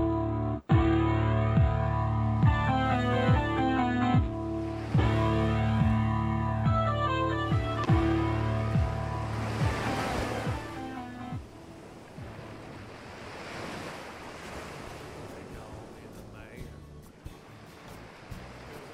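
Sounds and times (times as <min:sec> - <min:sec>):
ocean waves rolling and washing: 0:01.1 - 0:18.9.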